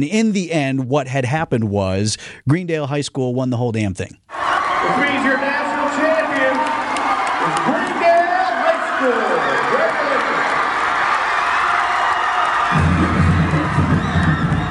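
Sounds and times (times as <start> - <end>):
speech: 0.0 - 6.0
large crowd of students cheering and shouting in high school hallways: 4.3 - 14.7
drumline playing: 12.7 - 14.7.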